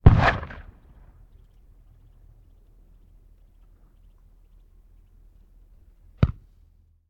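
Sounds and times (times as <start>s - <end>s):
cannon firing a cannonball: 0.0s - 1.3s.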